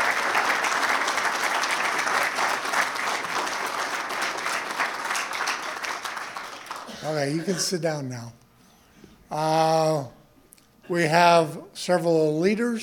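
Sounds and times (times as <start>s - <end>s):
audience applause: 0.0s - 7.5s
speech: 7.1s - 8.4s, 9.3s - 10.2s, 10.9s - 12.8s.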